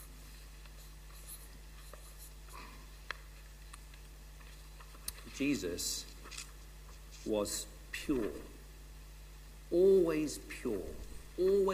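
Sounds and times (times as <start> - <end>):
low steady hum: 0.0 - 11.7
pen scratching on paper: 0.8 - 2.4
speech: 5.4 - 6.1, 7.2 - 8.6, 9.7 - 11.7.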